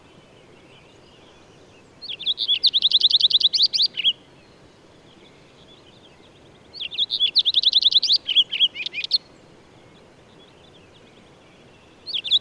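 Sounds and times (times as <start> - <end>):
faint background hiss: 0.0 - 12.3
bird song with twittering, chirps and trills: 2.0 - 4.2, 6.7 - 9.3, 12.0 - 12.3.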